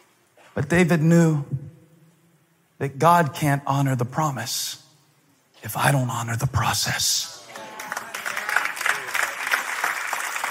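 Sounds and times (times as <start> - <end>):
speech: 0.6 - 1.6, 2.8 - 4.8, 5.6 - 7.4
audience applause during a sermon: 7.5 - 10.4.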